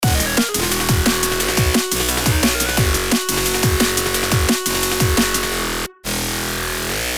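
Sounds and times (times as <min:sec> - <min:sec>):
bass sound: 0:00.0 - 0:07.0.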